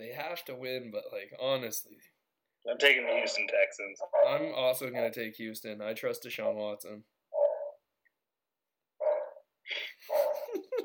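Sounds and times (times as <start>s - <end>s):
speech: 0.3s - 7.1s
dog barking: 4.0s - 4.5s, 9.0s - 9.4s, 10.1s - 10.6s.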